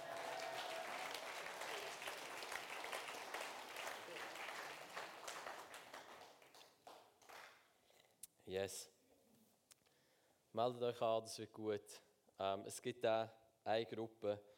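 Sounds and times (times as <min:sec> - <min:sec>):
audience applause: 0:00.0 - 0:07.5
speech: 0:08.5 - 0:09.0, 0:10.6 - 0:14.5.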